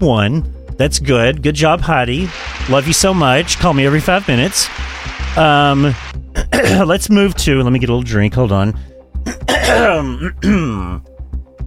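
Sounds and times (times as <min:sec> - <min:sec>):
speech: 0:00.0 - 0:11.1
person clearing phlegm from their throat: 0:06.4 - 0:06.9, 0:09.2 - 0:11.0.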